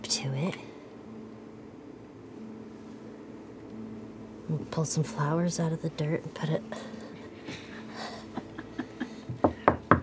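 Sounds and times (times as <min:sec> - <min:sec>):
speech: 0:00.1 - 0:00.7, 0:04.5 - 0:07.0
knocks on a hard surface: 0:09.3 - 0:10.0.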